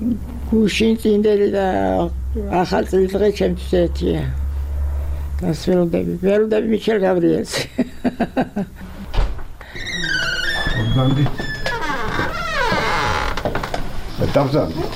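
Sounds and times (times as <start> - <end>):
speech: 0.0 - 4.4, 5.4 - 8.9, 10.9 - 11.5, 14.2 - 14.9
laughter: 7.5 - 9.0
room door in a retirement home creaking: 9.0 - 14.2, 14.8 - 14.9.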